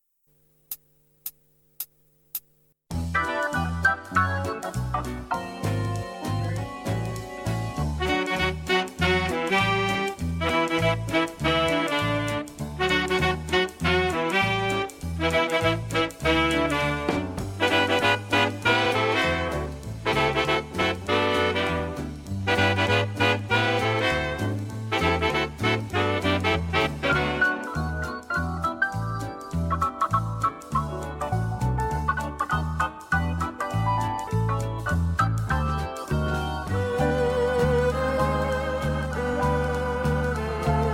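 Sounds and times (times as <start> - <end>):
1940s ballroom quickstep music: 0.2 - 40.9.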